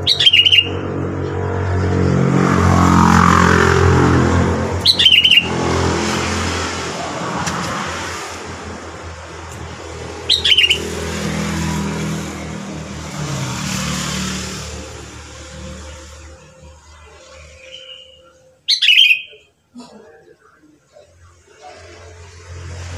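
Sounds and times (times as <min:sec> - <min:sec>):
sooty-headed bulbul bubbly whistled song: 0:00.0 - 0:00.8, 0:04.9 - 0:05.5, 0:10.3 - 0:10.8, 0:17.0 - 0:19.5
steady low rumble of traffic: 0:00.0 - 0:22.9.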